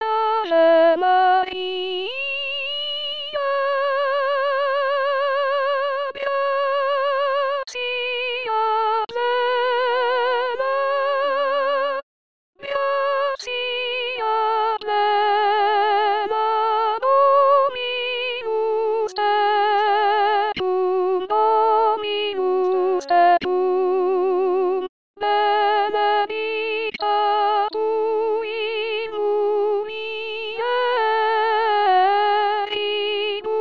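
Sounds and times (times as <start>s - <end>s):
soprano voice singing: 0.0s - 12.0s, 12.6s - 33.6s.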